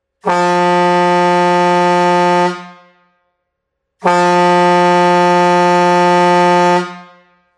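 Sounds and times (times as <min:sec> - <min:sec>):
chrome fanfare truck horn 12V 24V 64cm: 0:00.2 - 0:03.2, 0:04.0 - 0:07.5.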